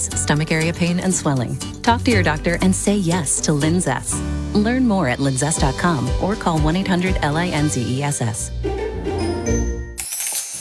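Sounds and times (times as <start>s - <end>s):
speech: 0.0s - 9.2s
coins dropping with a metallic clinking jingle: 10.0s - 10.5s.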